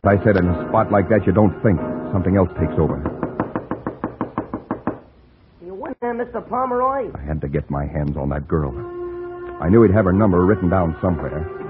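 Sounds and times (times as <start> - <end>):
speech: 0.0 - 3.1, 6.1 - 8.9, 9.6 - 11.6
bellboy pounding on a door: 3.0 - 5.0.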